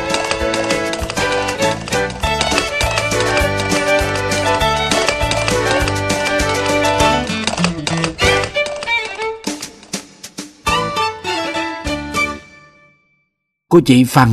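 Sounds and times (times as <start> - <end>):
hooves of a horse pulling a carriage clip-clopping: 0.0 - 10.3
full sustained musical backing: 0.0 - 12.8
speech: 13.8 - 14.3.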